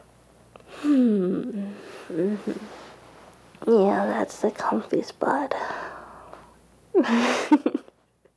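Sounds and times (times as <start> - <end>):
person yawning with a voiced groan: 0.8 - 2.6
speech: 4.3 - 5.8, 7.0 - 7.7.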